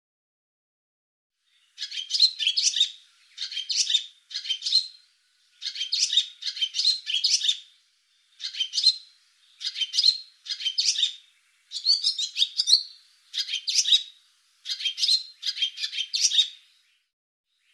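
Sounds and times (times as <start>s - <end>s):
Barn swallow giving scratchy twittering notes: 1.7s - 5.0s, 5.6s - 7.7s, 8.3s - 16.6s.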